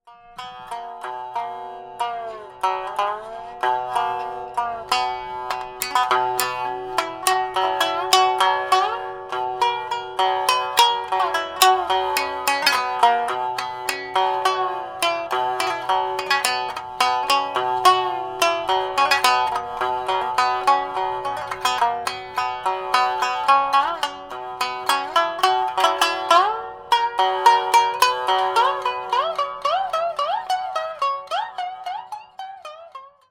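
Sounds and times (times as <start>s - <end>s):
shamisen solo: 0.1s - 33.2s.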